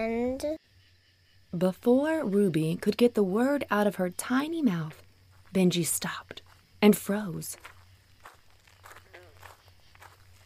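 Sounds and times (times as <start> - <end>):
speech: 0.0 - 0.6, 1.5 - 7.8
crunchy footsteps at a walking pace: 4.4 - 10.4.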